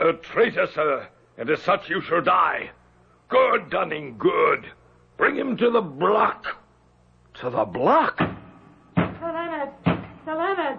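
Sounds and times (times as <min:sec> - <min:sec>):
speech: 0:00.0 - 0:06.6, 0:07.4 - 0:08.3
knocking on a wooden door: 0:08.2 - 0:09.2, 0:09.8 - 0:10.2.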